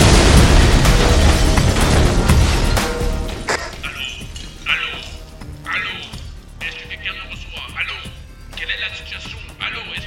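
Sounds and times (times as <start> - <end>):
homemade bomb explosion: 0.0 - 4.0
debris clinking: 0.0 - 5.5.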